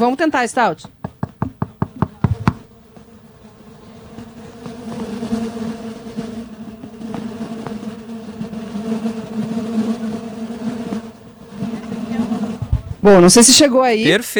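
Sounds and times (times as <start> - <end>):
speech: 0.0 - 1.0, 13.0 - 14.3
many stingless bees buzzing: 0.0 - 14.3
sharp knocks on a wooden hive box: 0.8 - 3.1, 6.9 - 8.6.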